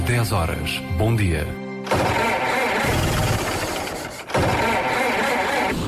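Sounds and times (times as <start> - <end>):
speech: 0.2 - 2.3
car engine damaged by wrong oil cranking and failing to start: 1.9 - 5.7.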